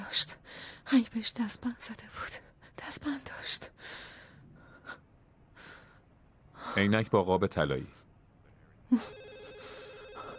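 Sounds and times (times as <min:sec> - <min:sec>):
speech: 0:00.1 - 0:04.0, 0:06.8 - 0:08.0, 0:08.9 - 0:09.2
telephone ringing with a warbling electronic tone: 0:09.0 - 0:10.3.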